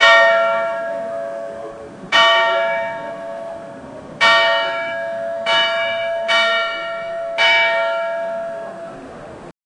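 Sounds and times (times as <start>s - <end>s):
solemn church bells ringing: 0.0s - 9.5s.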